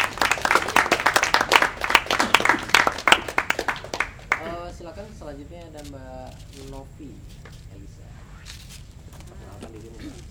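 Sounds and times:
audience applause: 0.0s - 4.5s
speech: 5.3s - 8.1s.

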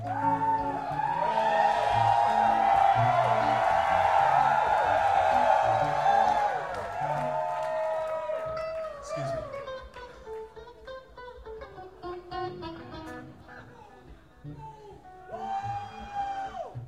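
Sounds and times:
large audience screaming and cheering: 0.0s - 9.8s, 15.3s - 16.8s.

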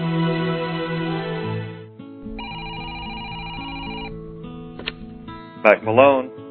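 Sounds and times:
music: 0.0s - 6.5s
office telephone ringing with electronic trill: 2.2s - 4.3s
speech: 5.6s - 6.4s.

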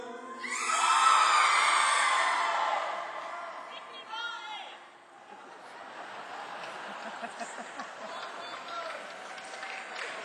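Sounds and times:
crowd of girls screaming: 0.4s - 3.7s
laughter: 5.1s - 9.3s.

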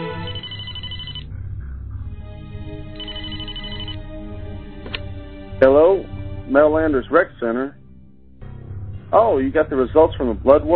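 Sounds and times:
telephone ringing: 0.1s - 1.3s, 3.0s - 4.0s
speech: 5.6s - 7.8s, 9.1s - 10.7s.

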